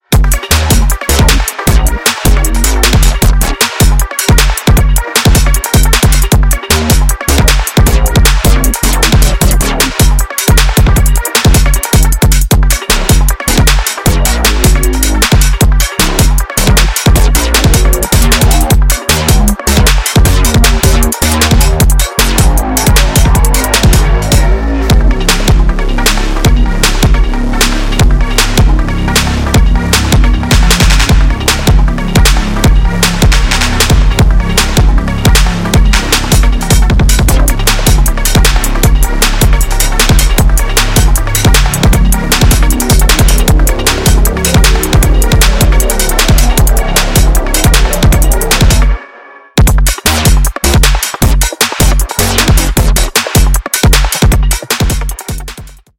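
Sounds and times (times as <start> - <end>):
deep synth bass: 0.0 - 49.0, 49.6 - 55.9.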